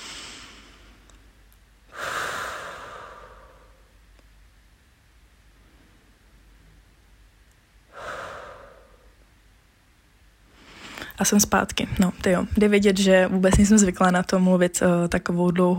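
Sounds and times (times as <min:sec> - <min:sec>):
deep breaths taken as a breathing exercise: 0:00.0 - 0:04.1, 0:07.8 - 0:09.3, 0:10.4 - 0:11.2
quiet steady hiss: 0:00.0 - 0:15.7
speech: 0:11.2 - 0:15.7.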